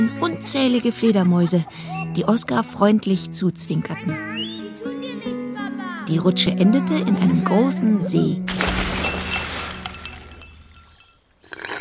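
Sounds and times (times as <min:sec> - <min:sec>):
speech: 0:00.0 - 0:04.4, 0:06.1 - 0:08.7
ice cubes clinking and rattling in a glass of lemonade: 0:08.5 - 0:11.1.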